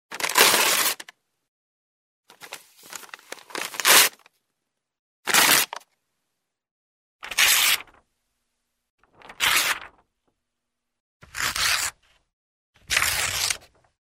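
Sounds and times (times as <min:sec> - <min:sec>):
paper tearing: 0:00.1 - 0:01.1, 0:02.8 - 0:04.3, 0:05.3 - 0:05.8, 0:07.2 - 0:08.0, 0:09.1 - 0:10.0, 0:11.2 - 0:12.0, 0:12.8 - 0:13.8.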